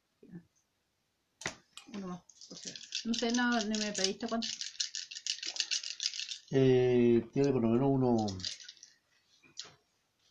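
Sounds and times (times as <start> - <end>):
speech: 2.1 - 4.7, 6.5 - 8.6
dice rattling as they are rolled: 2.3 - 6.6, 7.4 - 9.7.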